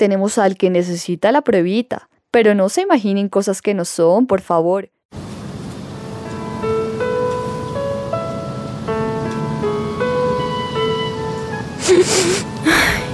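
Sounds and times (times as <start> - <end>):
speech: 0.0 - 5.2, 12.0 - 13.0
soft steady melody: 5.7 - 13.1
woman crying while watching a romantic film: 11.8 - 13.1
woman's sharp sobbing bursts: 11.8 - 13.1.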